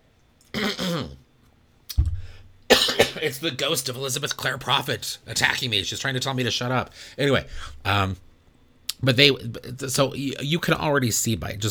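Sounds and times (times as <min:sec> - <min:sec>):
person clearing throat with something stuck in the throat: 0:00.6 - 0:01.2, 0:02.7 - 0:03.2
speech: 0:03.2 - 0:08.3, 0:09.0 - 0:11.6.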